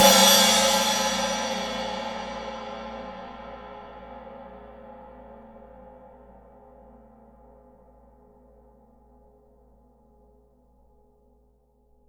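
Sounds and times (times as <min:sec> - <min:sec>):
tuned crash cymbal in A: 0:00.0 - 0:04.6.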